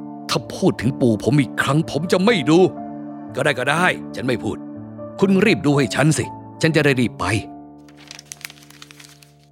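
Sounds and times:
speech: 0.3s - 4.6s, 5.2s - 7.5s
folded old silk manuscript crackling as opened out: 7.8s - 9.5s.

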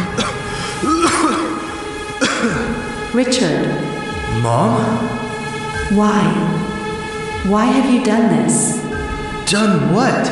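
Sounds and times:
person coughing and gagging: 0.0s - 2.9s
speech: 3.1s - 5.2s, 5.9s - 6.7s, 7.4s - 8.8s, 9.5s - 10.3s.

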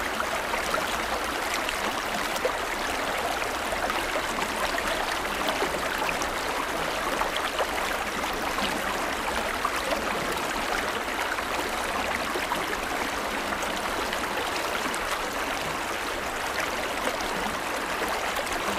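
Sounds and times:
gentle water stream babbling: 0.0s - 18.7s.

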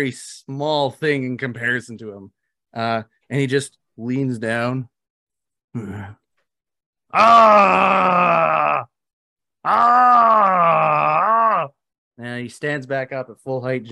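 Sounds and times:
speech: 0.0s - 4.9s, 5.8s - 6.2s, 7.1s - 8.9s, 9.6s - 11.2s, 12.2s - 13.9s
voice imitating a super mutant's guttural groaning scream: 7.1s - 9.0s, 9.6s - 11.8s.

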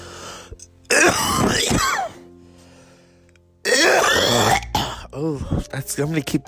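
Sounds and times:
person coughing: 0.9s - 2.2s, 3.7s - 5.1s
speech: 5.2s - 6.4s.

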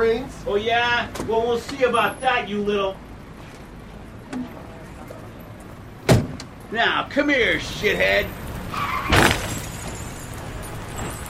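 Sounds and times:
speech: 0.2s - 3.1s, 6.7s - 8.9s
crash of two trucks: 7.3s - 11.2s
glass shattering: 8.8s - 11.2s.

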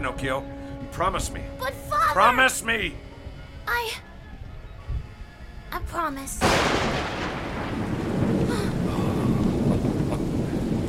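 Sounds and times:
speech: 0.0s - 3.1s, 3.7s - 4.1s, 5.7s - 7.0s
deep rolling rumble of thunder: 6.4s - 10.8s
steady rain pouring down: 6.4s - 10.8s.

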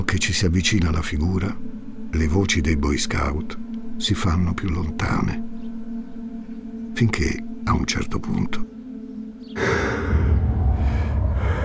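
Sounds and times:
speech: 0.1s - 5.5s, 7.0s - 8.8s
heavy rough breathing of person regaining breath after asphyxia: 9.6s - 11.6s
person gasping after asphyxia in a noose: 9.6s - 11.6s.

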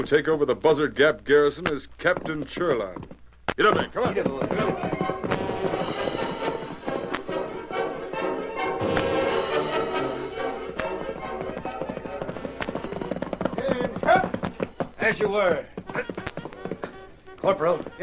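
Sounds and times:
speech: 0.0s - 5.3s, 15.1s - 15.8s, 17.5s - 18.0s
horses' hooves clip-clopping as horses are led by the reins: 0.0s - 18.0s
music: 4.0s - 18.0s.

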